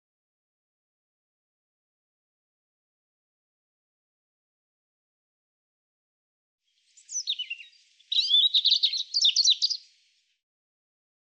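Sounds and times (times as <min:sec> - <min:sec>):
European robin song: 0:06.8 - 0:10.2.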